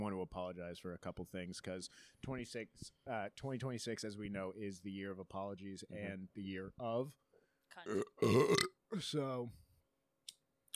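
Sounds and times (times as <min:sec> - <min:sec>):
speech: 0:00.0 - 0:09.6
person burping into a microphone: 0:07.8 - 0:09.0.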